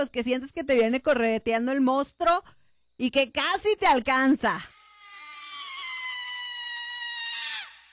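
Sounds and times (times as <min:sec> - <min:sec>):
speech: 0:00.0 - 0:04.7
long shrill human scream with a hen-like squawking quality: 0:04.8 - 0:07.9.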